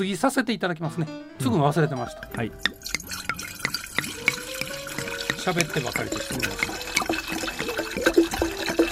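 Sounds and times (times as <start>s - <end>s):
speech: 0.0s - 3.2s, 5.5s - 8.8s
drink poured from a large plastic bottle for a memorial toast: 2.2s - 8.9s.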